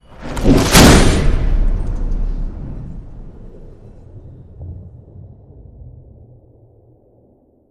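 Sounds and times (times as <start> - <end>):
explosive pressure bolt hit: 0.4 - 3.4.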